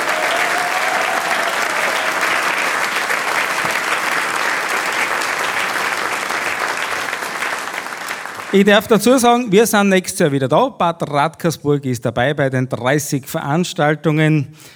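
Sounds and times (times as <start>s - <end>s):
audience applause: 0.0s - 8.8s
speech: 8.5s - 14.7s.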